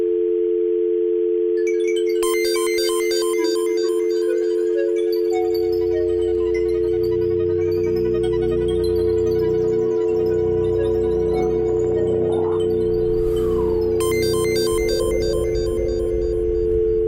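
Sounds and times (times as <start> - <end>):
telephone dial tone: 0.0 - 17.0
bright electronic beeping tones: 2.2 - 17.0
low rumble: 12.8 - 17.0.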